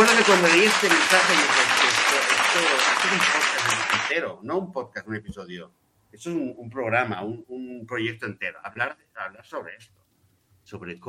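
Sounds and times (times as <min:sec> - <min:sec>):
speech: 0:00.0 - 0:01.6, 0:02.6 - 0:10.0, 0:10.7 - 0:11.0
applause: 0:00.0 - 0:04.2.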